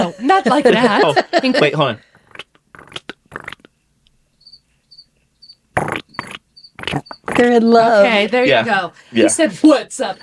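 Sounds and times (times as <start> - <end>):
laughter: 0.0 - 2.0
speech: 0.0 - 2.1, 6.9 - 10.2
rustling crunchy noises: 2.2 - 3.8, 5.8 - 7.6
crickets chirping through open window: 4.3 - 7.8.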